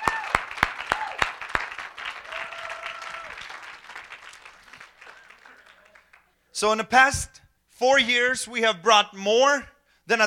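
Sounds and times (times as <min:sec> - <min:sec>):
sharp hand claps: 0:00.0 - 0:06.3
audience applause: 0:00.0 - 0:06.4
speech: 0:06.6 - 0:10.2.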